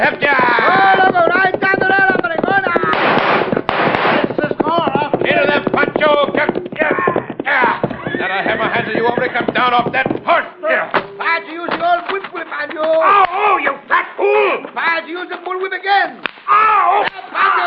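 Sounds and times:
speech: 0.0s - 0.2s, 9.7s - 10.0s
galloping hooves: 0.0s - 15.9s
men shouting and talking: 0.0s - 17.6s
gunshots in a horseback shootout: 2.7s - 4.7s
horse neighing: 6.8s - 9.5s.

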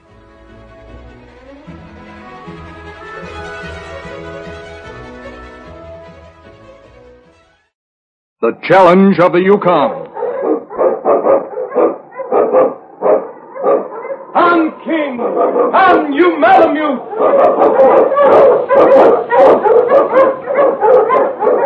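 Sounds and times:
speech: 8.4s - 10.0s, 15.4s - 20.3s
malamute sled dog barking and yipping: 10.1s - 14.4s, 15.2s - 21.6s.

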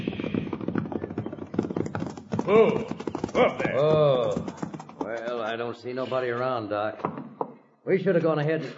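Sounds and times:
horse hooves clip-clopping in a trot: 0.0s - 5.8s
speech: 2.5s - 7.2s, 7.9s - 8.7s.

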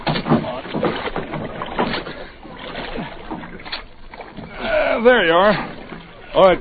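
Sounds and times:
footsteps of people and a dog on a small rocking boat hull: 0.0s - 4.6s
water sloshing: 0.0s - 6.6s
speech: 5.0s - 5.7s, 6.3s - 6.6s.

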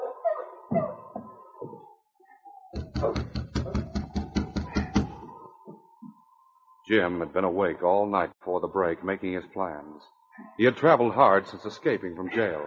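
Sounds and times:
knocking on the wooden door of an isolated cabin: 2.8s - 5.2s
speech: 6.9s - 12.6s.

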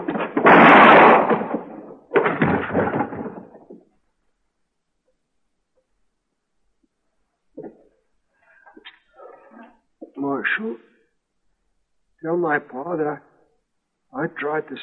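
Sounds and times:
gunshots: 0.0s - 3.3s
speech: 12.3s - 13.3s, 14.1s - 14.8s.

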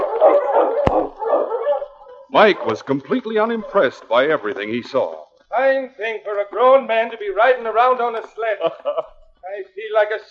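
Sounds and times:
sled dogs barking and howling on a Yukon winter trail: 0.0s - 4.6s
speech: 2.3s - 10.3s
laughter: 2.4s - 5.1s, 6.0s - 10.3s.

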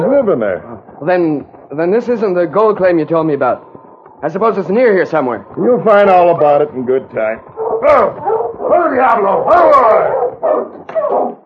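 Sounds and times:
speech: 0.2s - 11.4s
several dogs barking and yelping excitedly: 7.4s - 11.4s
sharp dog yips: 10.1s - 11.4s.

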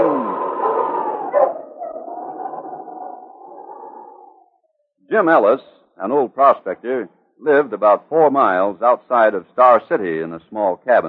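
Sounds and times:
dog howling: 0.0s - 4.6s
dog barking: 0.4s - 3.8s
speech: 5.2s - 11.0s.

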